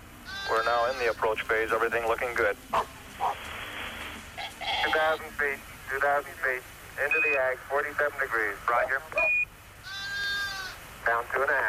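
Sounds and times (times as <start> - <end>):
sheep bleat with a wavering nasal tone: 0.3 - 1.3, 4.4 - 5.2, 9.8 - 10.8
speech: 0.5 - 3.0, 4.8 - 9.4, 11.1 - 11.6
short electronic beep: 9.2 - 9.5.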